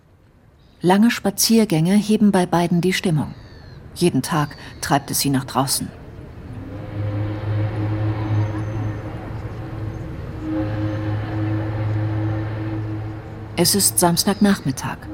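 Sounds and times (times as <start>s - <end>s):
speech: 0.8s - 3.4s, 4.0s - 6.0s, 13.6s - 15.1s
boat engine droning in a river harbor: 6.0s - 15.1s.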